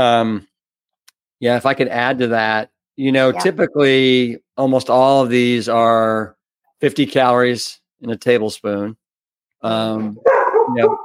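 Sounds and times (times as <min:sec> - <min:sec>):
speech: 0:00.0 - 0:00.5, 0:01.4 - 0:09.0, 0:09.6 - 0:11.0
dog barking with howling-toned barks: 0:10.2 - 0:11.0.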